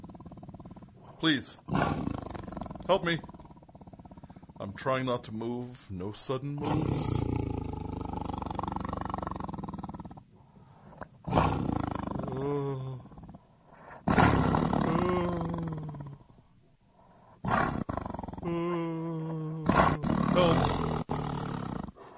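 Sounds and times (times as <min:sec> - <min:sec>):
tiger roaring with deep rumbling growls: 0:00.0 - 0:04.9, 0:06.6 - 0:10.3, 0:11.0 - 0:13.4, 0:14.0 - 0:16.3, 0:17.4 - 0:18.5, 0:19.6 - 0:22.1
speech: 0:01.2 - 0:02.1, 0:02.9 - 0:03.3, 0:04.6 - 0:07.3.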